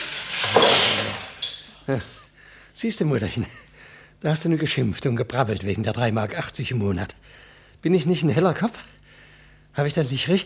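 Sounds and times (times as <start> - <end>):
broken glass shards shaken out of a bucket: 0.0 - 2.2
speech: 1.9 - 2.2, 2.8 - 9.0, 9.8 - 10.4.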